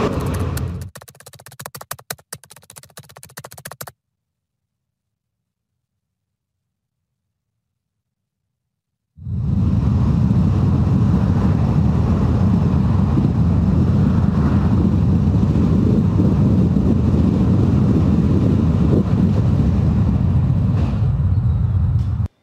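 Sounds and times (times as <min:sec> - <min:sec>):
Tesla car engine and road noise during a test drive: 0:00.0 - 0:01.0, 0:09.4 - 0:22.3.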